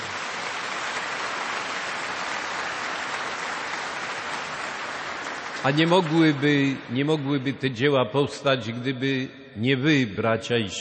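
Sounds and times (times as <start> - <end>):
large audience applauding: 0.0 - 7.0
speech: 5.6 - 10.7.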